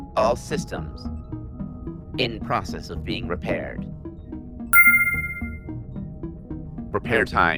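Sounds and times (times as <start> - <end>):
speech: 0.2 - 1.2, 2.2 - 4.0, 6.9 - 7.5
bright electronic chime from a computer system: 4.8 - 5.6.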